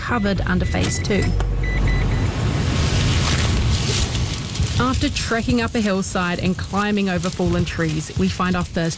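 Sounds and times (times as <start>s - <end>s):
truck driving off: 0.0s - 5.3s
road noise: 0.0s - 8.9s
speech: 0.1s - 1.8s, 4.8s - 8.9s.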